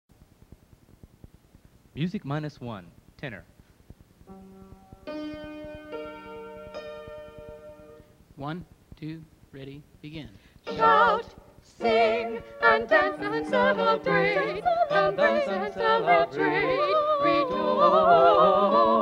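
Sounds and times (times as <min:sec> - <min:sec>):
tenor choir singing: 0:10.7 - 0:19.0.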